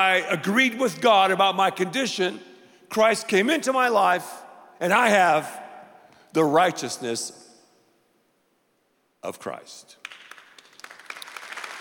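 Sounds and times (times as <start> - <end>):
speech: 0.0 - 5.6, 6.3 - 7.4, 9.2 - 10.0
audience clapping: 10.0 - 11.7.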